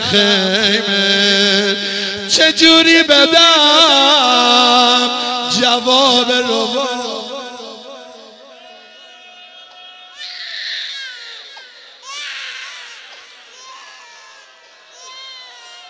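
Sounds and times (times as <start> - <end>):
speech: 0.0 - 7.1
baby crying: 10.1 - 15.8.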